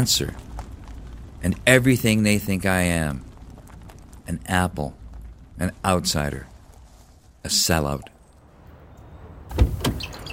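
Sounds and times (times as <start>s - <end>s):
speech: 0.0s - 0.6s, 1.4s - 3.3s, 4.3s - 5.0s, 5.6s - 6.5s, 7.4s - 8.1s
sharper car door latch sound: 9.5s - 10.1s
car door clunking open in a parking lot: 9.5s - 10.2s.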